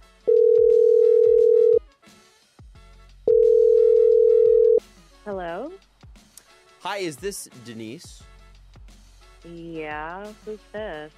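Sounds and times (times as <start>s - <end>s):
telephone line tone as a call is placed: 0.3s - 1.8s, 3.3s - 4.8s
speech: 6.8s - 8.3s, 9.4s - 11.1s.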